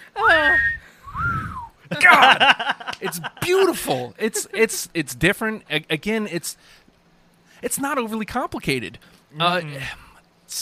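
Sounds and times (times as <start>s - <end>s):
soft low rumble: 0.6s - 1.7s
whistled melody: 0.6s - 1.7s
laughter: 1.9s - 4.9s
speech: 2.2s - 6.8s, 7.6s - 10.6s.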